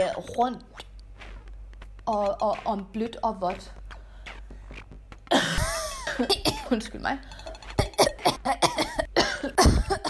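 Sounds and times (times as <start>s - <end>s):
speech: 0.0s - 0.8s, 2.1s - 3.8s, 6.2s - 7.4s, 8.4s - 8.8s
person coughing forcefully: 5.3s - 6.8s, 7.5s - 10.0s.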